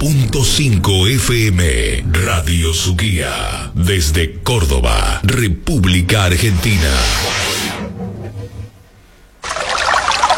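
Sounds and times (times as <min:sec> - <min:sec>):
speech: 0:00.0 - 0:07.5
zero-sodium bottled mineral water being poured: 0:09.4 - 0:10.3.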